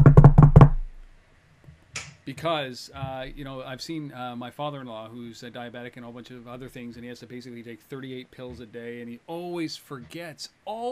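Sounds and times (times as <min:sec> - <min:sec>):
knuckles knocking on wood: 0:00.0 - 0:01.0
speech: 0:02.3 - 0:10.8.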